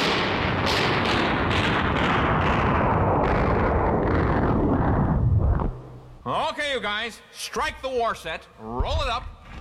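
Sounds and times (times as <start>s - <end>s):
battle gunfire and blasts sound effect: 0.0s - 6.1s
speech: 6.8s - 9.4s.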